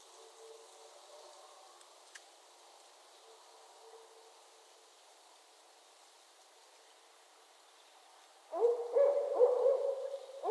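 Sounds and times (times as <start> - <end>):
barred owl hooting during mating season in northern Michigan: 8.5 - 10.4.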